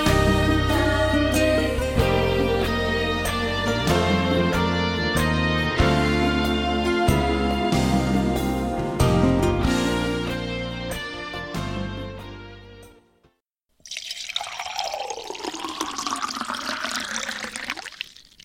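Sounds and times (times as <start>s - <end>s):
melodic music: 0.0s - 13.0s
freshly brewed coffee pouring into a cup in a studio: 13.8s - 18.4s.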